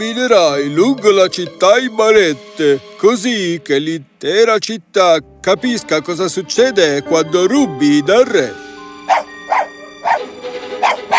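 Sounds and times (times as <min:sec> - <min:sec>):
speech: 0:00.0 - 0:09.3
dog barking in short sharp bursts: 0:09.1 - 0:11.1.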